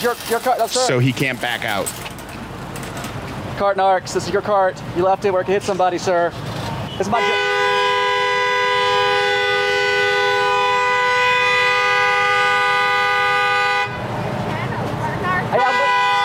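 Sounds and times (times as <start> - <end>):
speech: 0.0 - 2.1, 3.6 - 7.6
outdoor noise: 0.0 - 16.2
car horn blaring: 7.1 - 14.0, 15.5 - 16.2.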